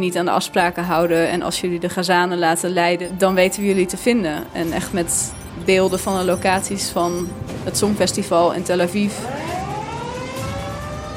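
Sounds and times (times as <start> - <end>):
speech: 0.0 - 9.6
sirens wailing: 3.2 - 11.1.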